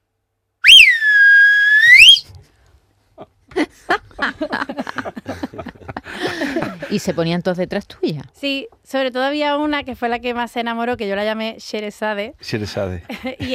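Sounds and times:
shepherd's whistle calling sheep: 0.6s - 2.2s
laughter: 3.2s - 7.2s, 13.1s - 13.5s
speech: 4.4s - 5.2s, 6.9s - 13.5s.

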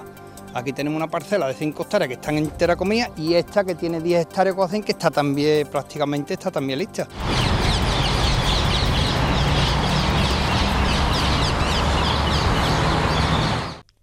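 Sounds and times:
speech: 0.5s - 7.4s
invasive exotic birds squawking over park treetops: 7.2s - 13.8s
steady low rumble of traffic: 7.2s - 13.8s.

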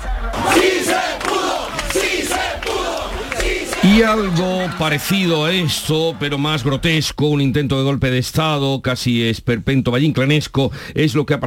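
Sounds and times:
large protest crowd shouting and chanting in the streets of Lima: 0.0s - 7.2s
speech: 4.0s - 11.4s.

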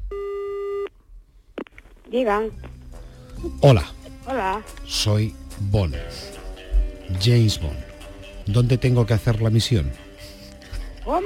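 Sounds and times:
steady electronic telephone line tone: 0.0s - 0.9s
speech: 2.1s - 2.7s, 3.4s - 6.4s, 7.1s - 7.9s, 8.5s - 10.1s, 11.1s - 11.2s.

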